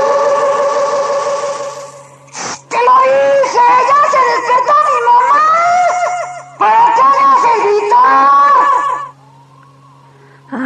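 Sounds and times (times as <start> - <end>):
faint steady hum: 0.0 - 10.6
woman screaming: 2.8 - 9.1.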